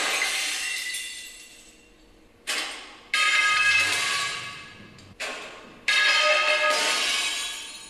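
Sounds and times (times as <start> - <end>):
breaking glass: 0.0 - 1.6, 2.5 - 4.7, 5.9 - 7.8
fluorescent tubes falling from the ceiling and shattering on the floor: 0.0 - 1.6, 2.5 - 4.7, 5.9 - 7.8.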